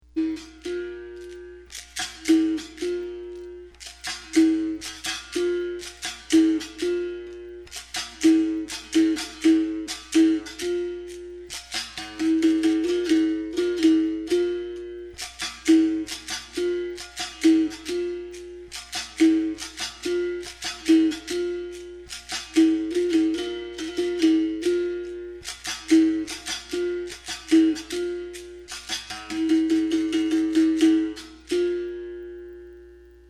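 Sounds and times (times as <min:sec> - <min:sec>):
Angola capoeira rhythm: 0:00.0 - 0:33.2.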